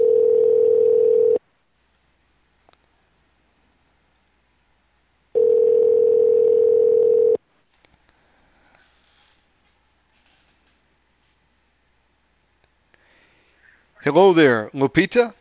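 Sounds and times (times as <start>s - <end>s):
steady loud telephone line tone while dialing: 0.0s - 1.4s, 5.4s - 7.4s
speech: 14.0s - 15.4s.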